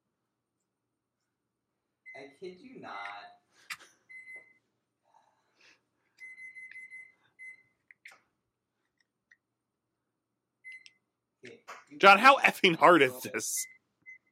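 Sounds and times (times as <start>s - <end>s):
speech: 2.2s - 3.3s, 12.0s - 13.7s
microwave timer beeping in short high electronic tones: 6.2s - 7.7s, 10.6s - 11.0s.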